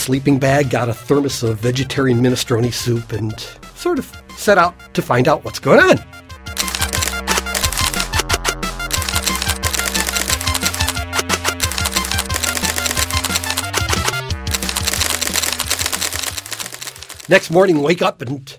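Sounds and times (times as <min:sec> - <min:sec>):
speech: 0:00.0 - 0:06.2, 0:17.3 - 0:18.5
teletype printer clattering while printing out paper: 0:06.6 - 0:08.3, 0:08.9 - 0:17.5.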